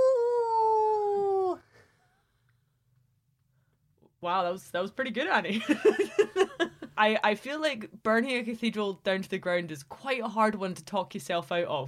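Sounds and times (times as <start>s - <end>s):
person imitating a wolf howl: 0.0s - 1.6s
speech: 4.2s - 11.8s.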